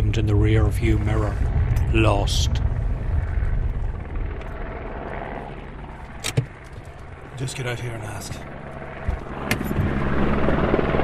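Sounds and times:
British Army helicopter flying overhead above an unapproved border road: 0.0 - 11.0
speech: 0.2 - 2.6, 7.4 - 9.6.

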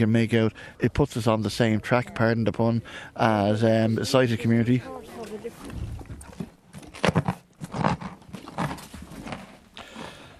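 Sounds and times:
speech: 0.0 - 5.8
horse crunching and chewing a carrot: 4.9 - 10.3.

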